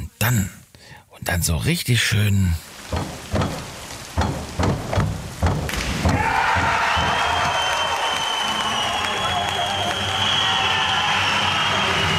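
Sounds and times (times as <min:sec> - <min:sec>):
speech: 0:00.3 - 0:03.2
rhythmic springy thumps: 0:02.7 - 0:07.8
crowd cheering and applause at a diving competition: 0:05.6 - 0:12.1.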